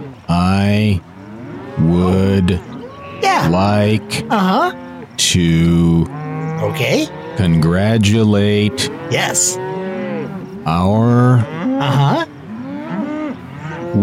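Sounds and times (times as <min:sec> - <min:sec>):
cattle mooing in a pasture: 0:00.0 - 0:14.0
speech: 0:00.3 - 0:01.1, 0:01.8 - 0:09.7, 0:10.6 - 0:12.3.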